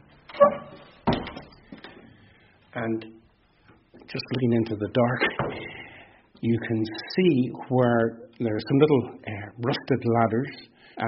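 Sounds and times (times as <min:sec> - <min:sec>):
door opened with a short creaking scrape: 0:00.2 - 0:01.6
speech: 0:02.8 - 0:03.2, 0:04.1 - 0:05.8, 0:06.4 - 0:11.0.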